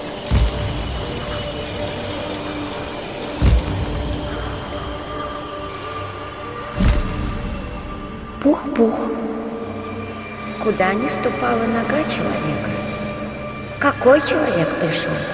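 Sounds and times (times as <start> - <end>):
heavy rain: 0.0 - 8.6
speech: 8.4 - 9.2, 10.6 - 12.8, 13.8 - 15.3.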